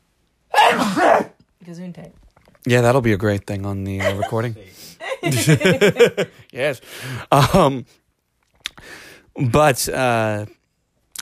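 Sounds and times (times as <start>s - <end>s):
person sneezing: 0.5s - 1.4s
speech: 1.7s - 8.0s, 8.8s - 10.6s
laughter: 4.0s - 6.4s.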